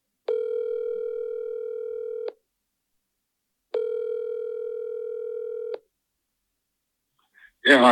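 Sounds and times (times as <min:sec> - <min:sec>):
telephone line tone: 0:00.3 - 0:02.4, 0:03.8 - 0:05.8
speech: 0:07.6 - 0:07.8.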